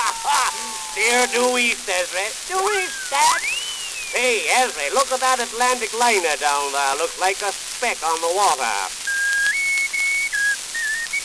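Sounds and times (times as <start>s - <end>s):
laughter: 0.0s - 5.6s
steady hiss: 0.0s - 11.2s
speech: 1.0s - 3.5s, 4.1s - 9.0s
person whistling a tune aboard an aeroplane in flight: 2.7s - 4.5s, 9.1s - 11.2s.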